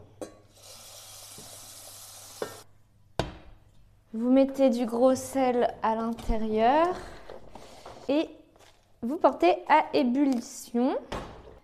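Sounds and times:
water running from a tap into a large saucepan filled to boil broccoli: 0.5 - 2.6
speech: 4.1 - 7.2, 8.1 - 8.4, 9.0 - 11.2.

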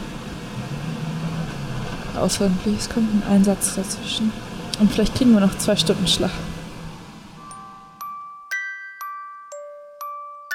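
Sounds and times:
faint road noise: 0.0 - 8.2
emergency vehicle engine humming while driving: 0.0 - 8.4
speech: 2.2 - 6.5.

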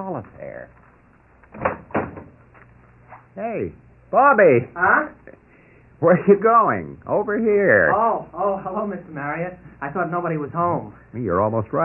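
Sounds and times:
speech: 0.0 - 0.8, 3.4 - 5.2, 6.0 - 11.8
front door swinging open: 1.5 - 2.4.

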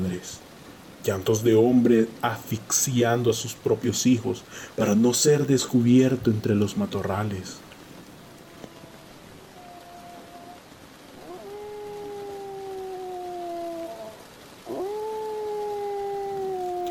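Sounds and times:
speech: 0.0 - 7.6
steady rain-like hiss: 0.0 - 16.8
dog howling: 8.2 - 16.8.

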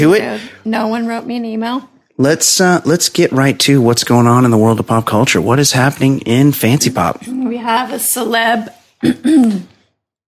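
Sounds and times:
speech: 0.0 - 9.7
person clearing throat: 9.0 - 9.9.

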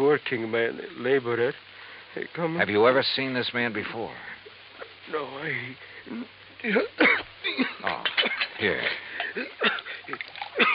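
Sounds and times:
speech: 0.1 - 4.4, 5.1 - 10.7
water being poured: 9.2 - 10.7.

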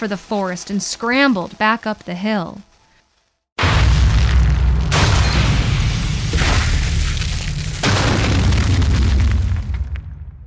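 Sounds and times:
speech: 0.0 - 2.7
gunpowder explosion aboard a pirate ship: 3.6 - 10.4.

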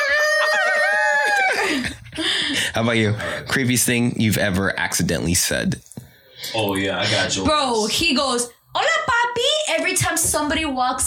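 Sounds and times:
person imitating a rooster crowing: 0.0 - 1.6
speech: 2.8 - 9.0, 9.7 - 11.0.

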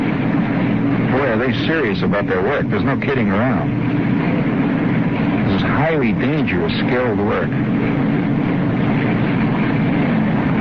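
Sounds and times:
basic oxygen furnace roaring in a steel mill: 0.0 - 10.6
speech: 1.4 - 4.1, 5.6 - 8.3.

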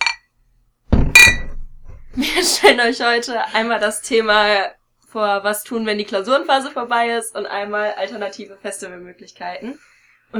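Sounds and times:
glasses clinking in a toast: 0.0 - 0.3, 1.2 - 1.6
speech: 2.2 - 10.3.

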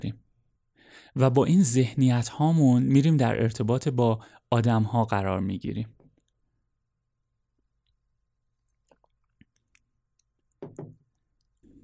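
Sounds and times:
speech: 1.2 - 6.0
person sipping water from a glass: 8.6 - 10.6.

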